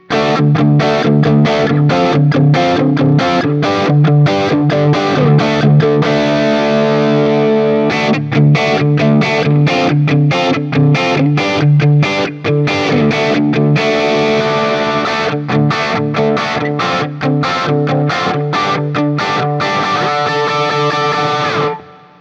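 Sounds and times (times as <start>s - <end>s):
Guild T Bird ST 90 electric guitar with P90 pickups through JCM800 amplifier: 0.0s - 22.1s.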